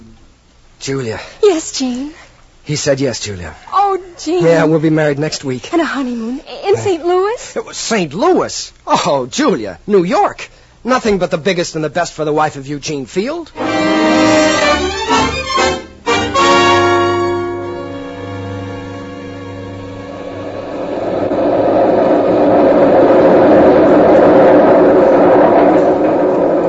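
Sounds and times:
speech: 0.8s - 15.0s
new elevated railway train in New York rumbling past above the street: 13.5s - 26.6s.

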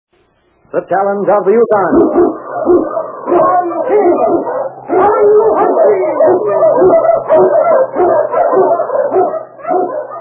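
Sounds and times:
speech: 0.7s - 4.6s, 5.2s - 9.0s
Eskimo lead sled dog barking and yipping excitedly: 1.8s - 10.2s.

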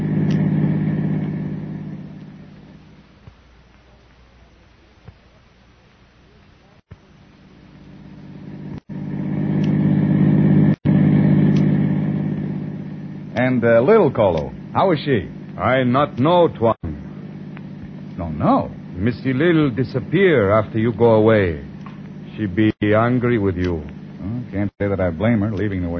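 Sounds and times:
car driving off with a low engine rumble: 0.0s - 3.0s, 8.1s - 22.3s
speech: 13.4s - 16.9s, 18.4s - 21.7s, 22.4s - 25.9s.

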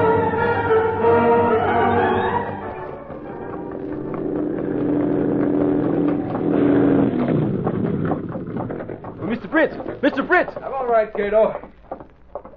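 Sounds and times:
car engine approaching: 0.1s - 10.6s
speech: 11.2s - 11.6s.

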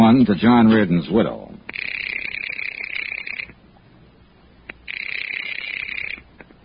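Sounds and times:
speech: 0.2s - 1.8s
telephone ringing: 1.7s - 3.5s, 4.8s - 6.3s.

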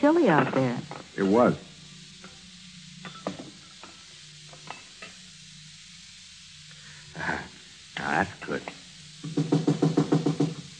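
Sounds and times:
speech: 0.0s - 1.7s, 8.1s - 9.6s
knocking on a back door: 9.2s - 10.7s.

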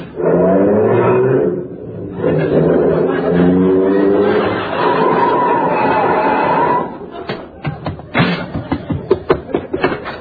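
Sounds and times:
car engine popping and roaring as it pulls up: 0.1s - 7.1s
laughter: 2.0s - 10.1s.

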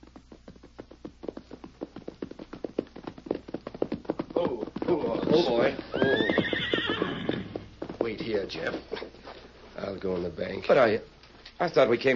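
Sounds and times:
ridden horses' hooves clip-clopping: 0.0s - 12.1s
horses neighing and whinnying: 4.2s - 9.1s
speech: 8.1s - 9.2s, 9.9s - 12.1s.

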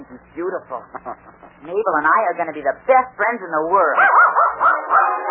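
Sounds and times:
speech: 0.1s - 4.7s
mixed-breed puppy yapping and barking: 4.0s - 5.2s.

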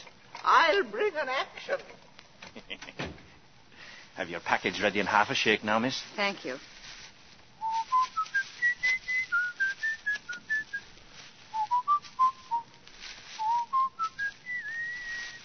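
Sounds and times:
speech: 0.7s - 2.0s, 2.6s - 3.2s, 4.2s - 6.7s
person whistling a melodic tune: 7.6s - 10.8s, 11.5s - 12.7s, 13.4s - 15.4s.

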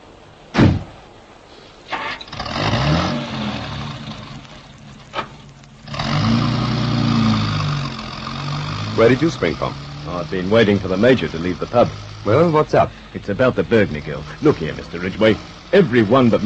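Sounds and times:
thumps like car doors: 0.5s - 1.0s
car engine starting and idling: 1.9s - 16.4s
speech: 9.0s - 16.4s.

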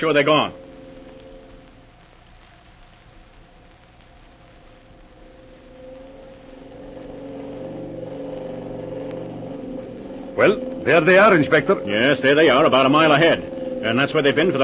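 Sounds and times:
speech: 0.0s - 0.6s, 10.4s - 14.6s
gas motorboat engine droning at full throttle: 5.3s - 14.6s.

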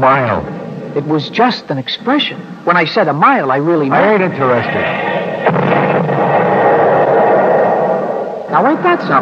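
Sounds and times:
speech: 0.0s - 5.6s, 8.6s - 9.1s
artillery fire and shell bursts in a battle: 4.3s - 9.1s.

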